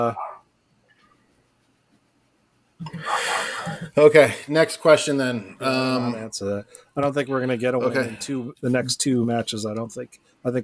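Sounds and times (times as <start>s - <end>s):
dog barking loudly: 0.2s - 0.4s
speech: 4.0s - 10.6s.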